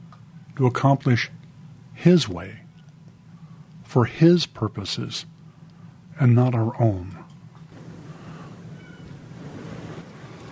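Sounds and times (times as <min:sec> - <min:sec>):
speech: 0:00.6 - 0:01.4, 0:02.0 - 0:02.6, 0:03.9 - 0:05.3, 0:06.2 - 0:07.2
ocean waves washing in: 0:07.7 - 0:10.5.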